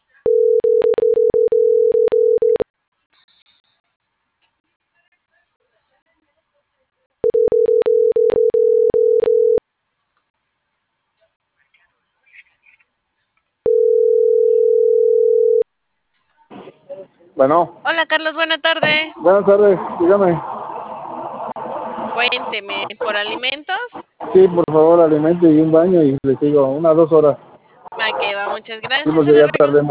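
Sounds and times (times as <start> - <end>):
telephone ringing tone on a small telephone: 0.3 - 2.6, 7.2 - 9.6, 13.7 - 15.6
speech: 17.4 - 20.5, 22.2 - 27.5, 28.7 - 29.8.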